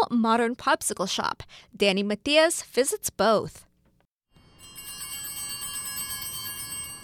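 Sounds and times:
speech: 0.1 - 3.7
small handheld bells on an ice cream street cart jingling: 4.6 - 7.0.

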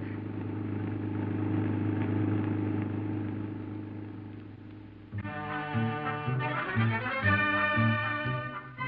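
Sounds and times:
convertible car engine and road rumble on Mexico Highway 1 toward Ensenada: 0.0 - 5.2
bright tonal music-like passage: 5.2 - 8.8.

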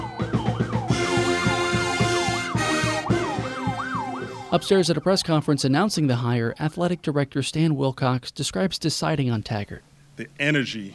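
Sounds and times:
police escort sirens wailing: 0.0 - 5.9
traffic noise: 0.0 - 6.4
speech: 4.5 - 10.9.

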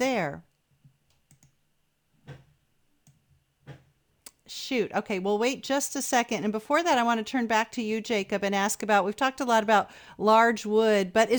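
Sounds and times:
speech: 0.0 - 0.5, 4.5 - 11.3
faint hum: 0.0 - 11.3
computer mouse clicking: 1.1 - 1.6.

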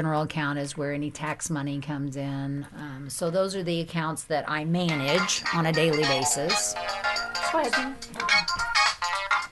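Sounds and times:
speech: 0.0 - 8.7
cell phone ringing with a melodic ringtone: 5.7 - 9.5.

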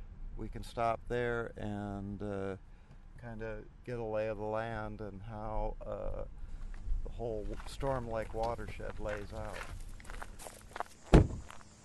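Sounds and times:
speech: 0.4 - 6.4, 7.1 - 9.8
footsteps of people walking through a small wooded area near a marshland lake: 6.5 - 11.8
heavy thud: 11.1 - 11.6.

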